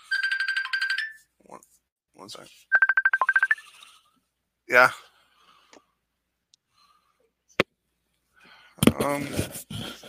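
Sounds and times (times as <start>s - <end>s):
mobile phone ringtone: 0.0s - 1.2s, 2.7s - 3.8s
speech: 2.2s - 2.7s, 4.7s - 5.1s, 9.0s - 9.9s.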